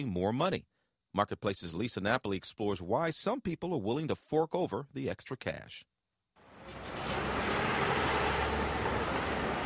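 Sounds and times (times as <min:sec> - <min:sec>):
speech: 0:00.0 - 0:05.9
busy New York City street traffic with engine rumble and road noise: 0:06.4 - 0:09.6.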